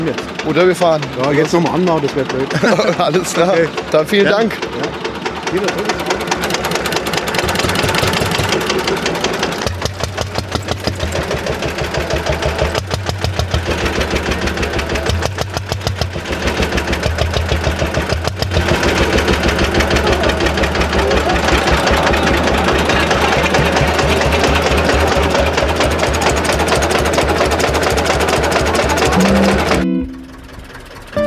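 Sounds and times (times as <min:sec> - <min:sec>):
speech: 0:00.0 - 0:06.2
laughter: 0:00.0 - 0:29.8
tractor engine running with rough chugging: 0:00.0 - 0:31.2.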